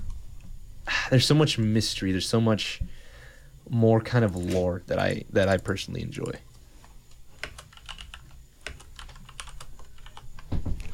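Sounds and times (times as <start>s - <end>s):
speech: 1.1s - 3.0s, 3.7s - 6.5s
typing on a computer keyboard: 7.4s - 10.5s.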